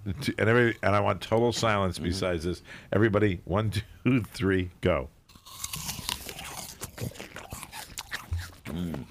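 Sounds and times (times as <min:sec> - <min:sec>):
speech: 0:00.1 - 0:05.9, 0:08.7 - 0:09.0
loud wet chewing of apples: 0:05.3 - 0:09.0
several people biting into crisp Honeycrisp apples: 0:05.3 - 0:09.0.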